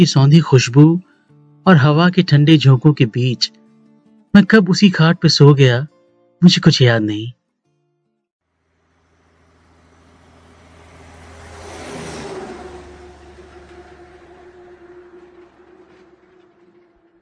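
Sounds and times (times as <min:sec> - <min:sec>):
speech: 0:00.0 - 0:03.6, 0:04.3 - 0:07.4
steady engine hum: 0:08.4 - 0:17.2
lingering tonal drone: 0:08.5 - 0:17.2
traffic: 0:08.5 - 0:17.2
vehicle roaring past at a roadside eatery: 0:08.5 - 0:17.2.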